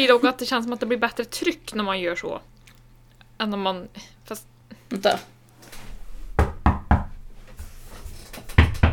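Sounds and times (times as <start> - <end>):
speech: 0.0 - 2.6, 3.4 - 5.4
knuckles knocking on a hard surface: 6.4 - 7.2.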